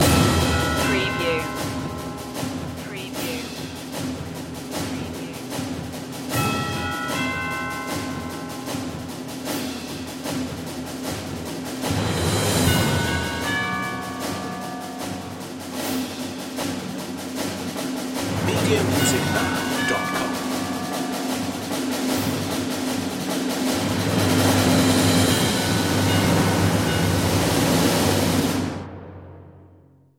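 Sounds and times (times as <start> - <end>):
percussion: 0.0 - 29.6.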